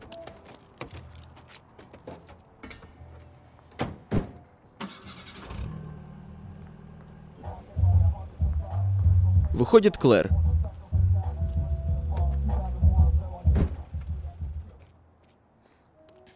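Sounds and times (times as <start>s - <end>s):
car engine turning over and settling into a rumble: 4.8s - 14.6s
speech: 9.6s - 10.4s.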